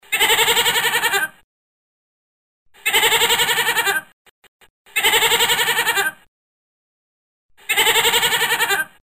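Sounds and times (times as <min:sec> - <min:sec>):
goat bleating: 0:00.0 - 0:01.3, 0:02.8 - 0:04.1, 0:05.0 - 0:06.2, 0:07.6 - 0:09.0.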